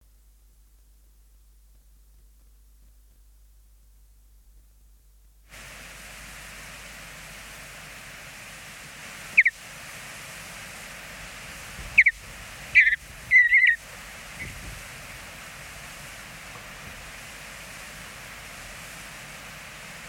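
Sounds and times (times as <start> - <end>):
mountain bluebird: 9.2 - 9.6, 11.9 - 14.6
songbirds: 9.3 - 9.6, 11.8 - 15.3.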